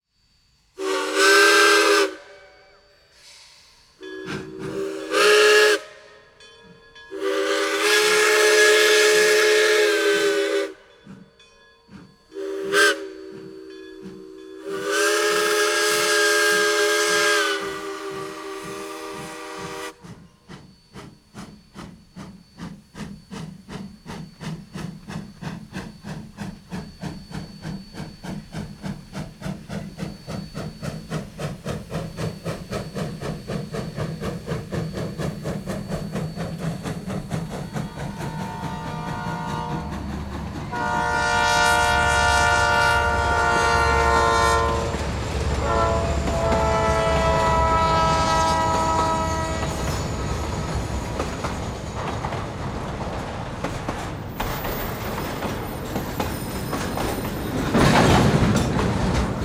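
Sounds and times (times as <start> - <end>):
trains: 0.1 - 59.4.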